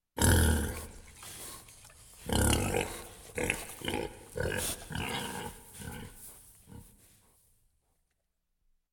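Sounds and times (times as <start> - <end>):
pig grunting in the countryside: 0.2 - 1.6, 2.2 - 7.0.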